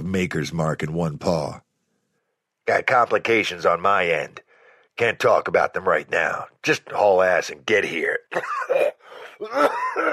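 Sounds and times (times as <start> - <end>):
speech: 0.1 - 1.6, 2.7 - 4.4, 5.0 - 10.1
man coughing: 8.3 - 10.1.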